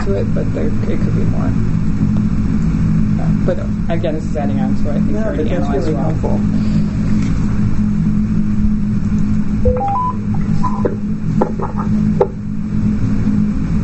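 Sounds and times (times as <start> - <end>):
speech: 0.0 - 2.1, 3.4 - 6.8
steady low engine-like rumble: 0.0 - 13.8
short electronic phone beeps: 9.7 - 10.9.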